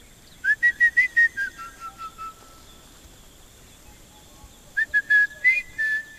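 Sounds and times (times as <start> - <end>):
faint outdoor ambience: 0.0 - 6.1
guide whistling in call and response: 0.4 - 2.6, 4.8 - 6.1
robin chat calling from the forest by a lake: 1.2 - 6.1.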